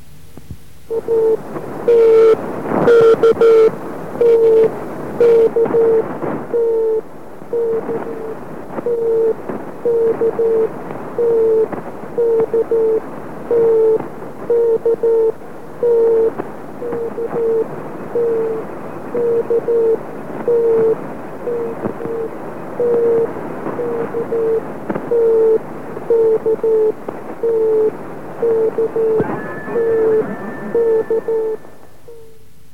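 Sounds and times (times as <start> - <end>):
constant hiss of radio static: 0.0 - 32.7
Morse code radio transmission beeps of a mid-pitched tone: 28.8 - 32.0.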